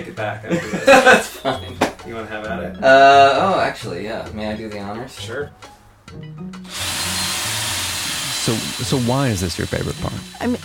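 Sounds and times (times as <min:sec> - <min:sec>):
speech: 0:00.1 - 0:06.8, 0:08.4 - 0:10.6
laughter: 0:00.2 - 0:01.9
power drill boring holes into IKEA furniture: 0:06.6 - 0:10.6.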